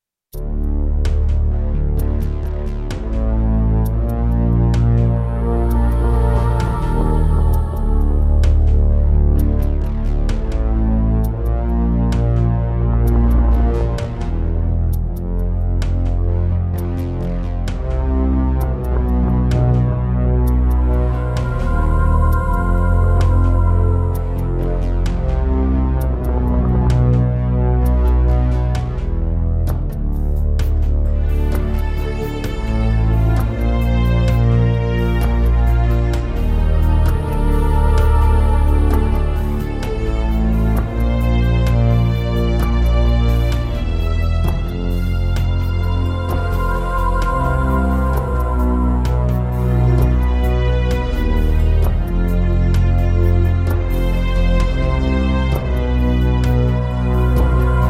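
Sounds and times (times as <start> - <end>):
Roland JV-1010 synthesizer: 0.3 - 57.8.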